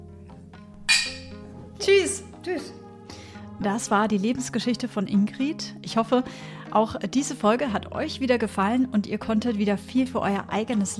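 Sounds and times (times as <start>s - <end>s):
glasses clinking in a toast: 0.9s - 1.4s
speech: 1.8s - 2.8s, 3.6s - 10.9s.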